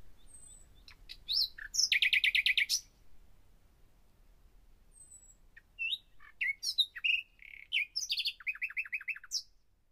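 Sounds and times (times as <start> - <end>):
common nightingale singing: 0.0 - 3.0, 4.9 - 9.6.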